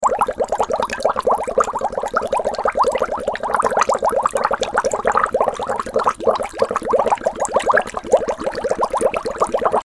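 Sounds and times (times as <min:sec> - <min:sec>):
water bubbling: 0:00.0 - 0:09.8.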